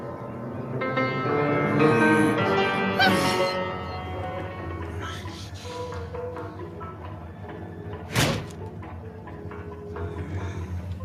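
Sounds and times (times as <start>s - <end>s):
piano crashing down with jangling clash of strings: 0.0s - 8.4s.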